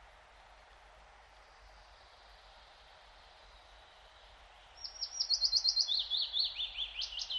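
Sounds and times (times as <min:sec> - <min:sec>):
Willow Warbler singing in pine forest: 0:04.8 - 0:07.3.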